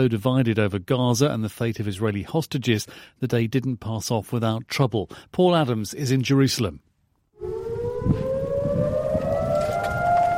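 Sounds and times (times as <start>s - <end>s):
speech: 0.0s - 8.2s
civil defense siren wailing over Israel on Memorial Day: 7.4s - 10.3s.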